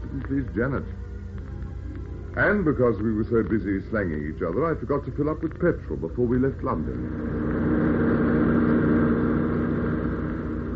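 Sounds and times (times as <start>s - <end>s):
speech: 0.2s - 1.0s, 2.4s - 7.7s
car driving fast: 6.8s - 10.7s.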